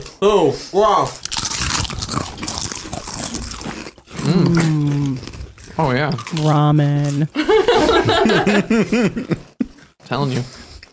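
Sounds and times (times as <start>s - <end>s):
speech: 0.1s - 1.2s, 4.3s - 9.4s, 10.1s - 10.6s
crunching of crisp tube-shaped snack chips being bitten and chewed: 1.2s - 7.4s
person humming appreciatively: 4.2s - 5.2s
laughter: 7.4s - 9.7s.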